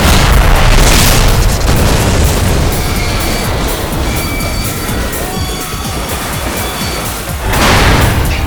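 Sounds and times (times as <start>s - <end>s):
chain of cannon round explosions: 0.0s - 8.4s
dense crackling rumble of explosions: 0.0s - 8.4s
faint whistling tones: 2.7s - 7.4s.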